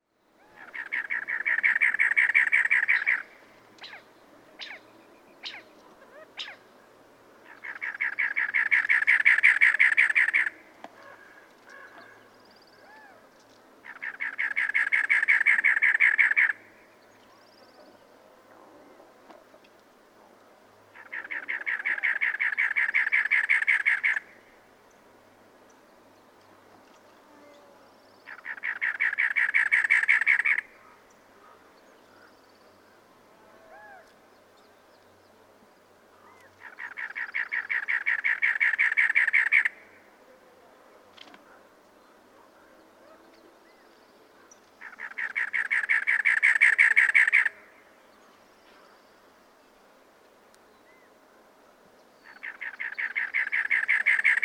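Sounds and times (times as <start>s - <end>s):
cactus wren calling: 0.4s - 6.7s, 7.4s - 17.9s, 20.9s - 24.4s, 27.4s - 30.9s, 36.2s - 40.1s, 44.4s - 47.8s, 52.2s - 54.4s.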